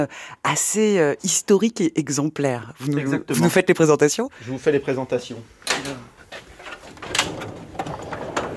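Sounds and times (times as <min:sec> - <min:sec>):
speech: 0:00.0 - 0:06.1
specimen cabinet drawer sliding open with a dry scraping rumble: 0:05.6 - 0:08.5
sharp wooden knocks and clicks of a specimen cabinet drawer: 0:05.7 - 0:08.5.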